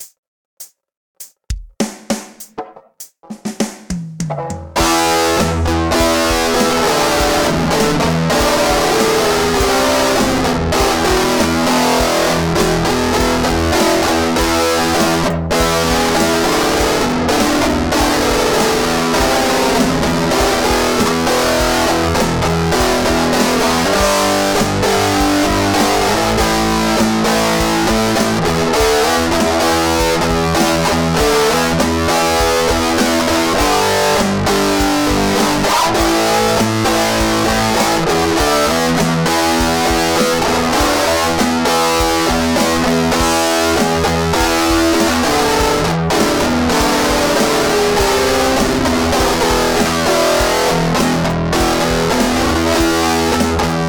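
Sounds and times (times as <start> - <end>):
music in E minor: 1.2 - 53.8.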